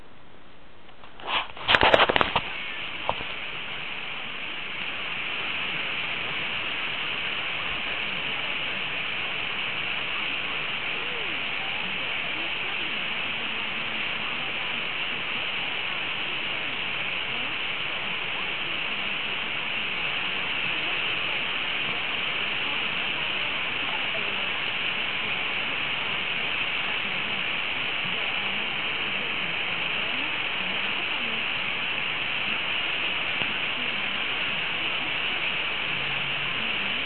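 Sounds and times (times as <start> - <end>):
hiss of medium-wave AM radio static: 0.0 - 37.0.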